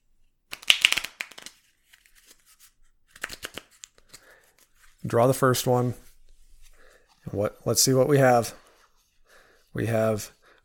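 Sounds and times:
playing cards being shuffled: 0:00.5 - 0:05.4
speech: 0:05.0 - 0:06.0, 0:07.3 - 0:08.6, 0:09.8 - 0:10.6.

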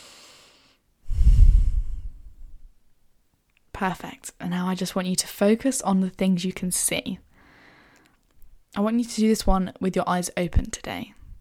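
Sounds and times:
deep human breath: 0:00.0 - 0:02.7, 0:07.4 - 0:08.2
speech: 0:03.8 - 0:07.3, 0:08.7 - 0:11.2.

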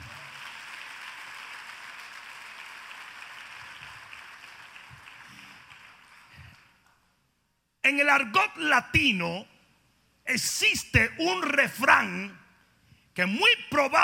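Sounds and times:
audience applauding: 0:00.0 - 0:06.8
speech: 0:07.9 - 0:09.5, 0:10.3 - 0:12.4, 0:13.2 - 0:14.0.

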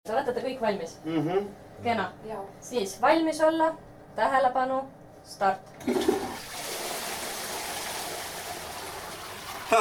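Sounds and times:
speech: 0:00.1 - 0:06.5
toilet flushing with gurgling rush: 0:05.8 - 0:09.7
steady stream of running water: 0:05.9 - 0:09.7.

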